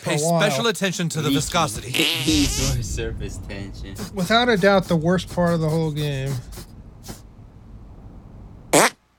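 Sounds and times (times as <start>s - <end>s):
low steady hum: 0.0s - 9.1s
speech: 0.1s - 6.6s
synthetic fart noises from a video game: 8.7s - 9.0s.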